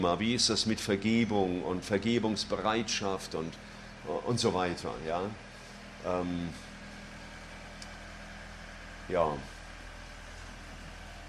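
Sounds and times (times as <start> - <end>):
speech: 0.0 - 6.7, 9.1 - 9.5
tractor engine drone driving past outside: 0.0 - 11.2.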